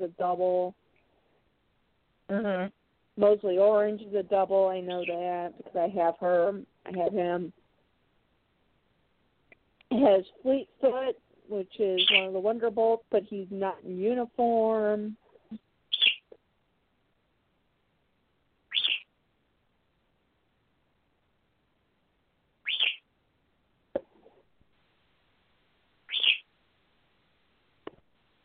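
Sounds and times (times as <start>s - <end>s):
speech: 0.0s - 0.8s, 2.3s - 7.6s, 9.9s - 15.6s
pet bird chirping: 4.7s - 5.4s, 11.8s - 12.5s, 15.4s - 16.4s, 18.7s - 19.1s, 22.6s - 23.0s, 26.1s - 26.5s.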